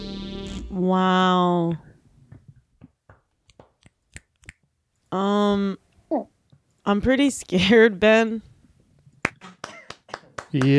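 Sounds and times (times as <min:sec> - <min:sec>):
speech: 0:00.7 - 0:01.9, 0:05.1 - 0:06.3, 0:06.9 - 0:08.5, 0:10.5 - 0:10.7
sharp hand claps: 0:09.2 - 0:10.7.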